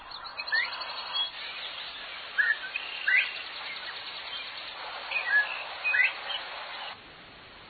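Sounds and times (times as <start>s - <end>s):
chorus of other birds chirping and trilling: 0.0s - 7.0s
steady hiss: 0.0s - 7.6s
northern bobwhite quail whistling rising calls: 0.2s - 4.5s, 5.1s - 6.9s.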